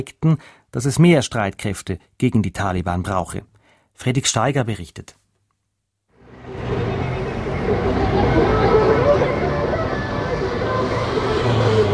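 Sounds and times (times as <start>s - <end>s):
speech: 0.0s - 5.2s
steady street traffic in Kabul Afghanistan: 6.2s - 11.9s.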